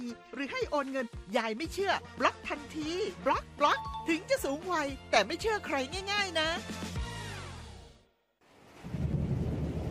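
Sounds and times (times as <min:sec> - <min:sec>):
speech: 0:00.1 - 0:06.8
low rolling thunder rumbles: 0:08.8 - 0:09.8.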